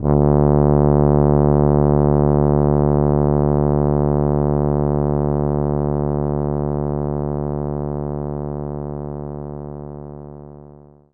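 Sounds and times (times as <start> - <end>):
tuba note D1: 0.0 - 7.7.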